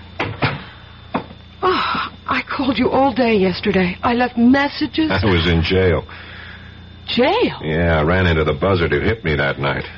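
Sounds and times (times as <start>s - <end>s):
door being pushed shut: 0.2s - 1.3s
speech: 2.3s - 6.3s, 7.1s - 9.9s.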